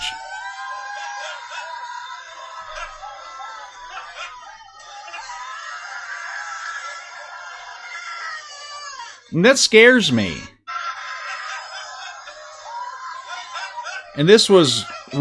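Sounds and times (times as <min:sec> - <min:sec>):
people screaming at a religious conference: 0:00.0 - 0:15.2
laughter: 0:01.0 - 0:07.8, 0:09.8 - 0:15.2
speech: 0:09.3 - 0:10.5, 0:14.2 - 0:15.2.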